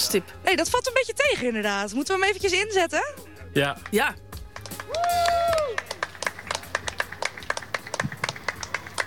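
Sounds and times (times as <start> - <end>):
speech: 0.1 - 5.9
small group of onlookers applauding: 3.8 - 9.0.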